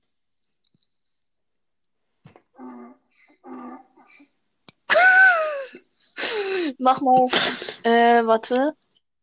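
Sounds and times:
recording of a donkey braying played by a smart speaker: 2.5s - 4.4s
speech: 6.8s - 8.8s.

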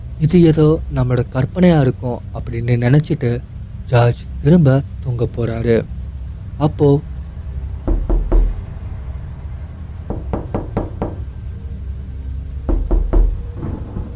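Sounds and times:
low steady rumble: 0.0s - 14.1s
speech: 0.2s - 6.0s, 6.6s - 7.1s
knocking on a door: 7.9s - 8.6s, 10.1s - 11.2s, 12.7s - 13.5s.

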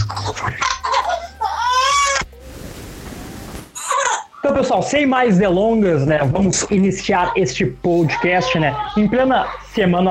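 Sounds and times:
baby crying: 0.0s - 2.3s, 3.8s - 4.4s, 7.0s - 9.8s
speech: 0.3s - 0.8s, 4.7s - 10.1s.

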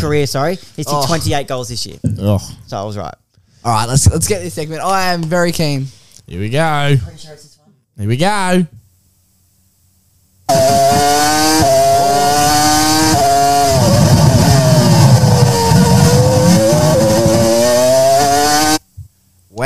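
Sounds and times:
speech: 0.0s - 8.8s
high-pitched racing car engine revving through gear changes: 10.5s - 18.8s.

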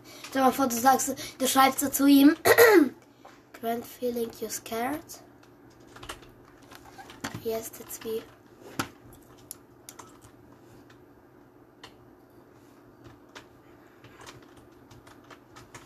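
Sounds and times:
low hum: 0.0s - 15.8s
speech: 0.3s - 3.0s, 3.6s - 5.3s, 7.4s - 8.4s
typing on a computer keyboard: 5.4s - 8.4s, 9.1s - 10.4s, 13.0s - 15.8s.

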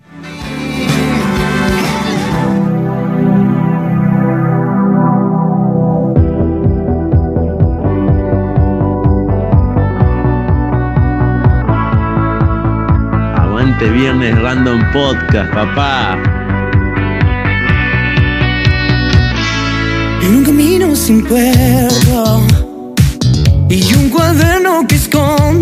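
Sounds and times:
newly released song with driving beat: 0.0s - 25.5s
speech: 13.8s - 16.3s, 21.1s - 22.6s, 23.7s - 25.5s.

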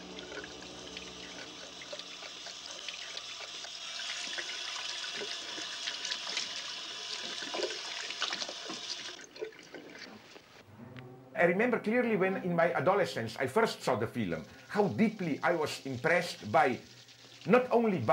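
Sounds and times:
water running from a tap while cleaning a bathroom: 0.0s - 10.0s, 13.7s - 18.1s
speech: 11.4s - 18.1s.

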